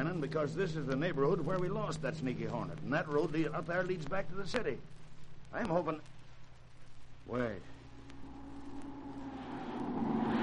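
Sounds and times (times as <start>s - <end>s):
speech: 0.1s - 6.2s, 7.3s - 7.8s
car engine droning while chasing another car: 8.2s - 10.4s.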